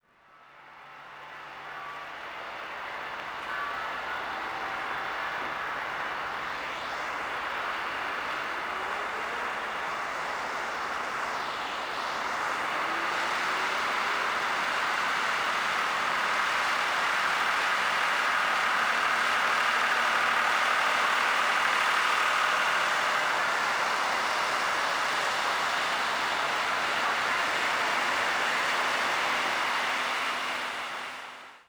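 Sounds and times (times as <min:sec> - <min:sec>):
river ambience in Paris: 0:01.7 - 0:31.2.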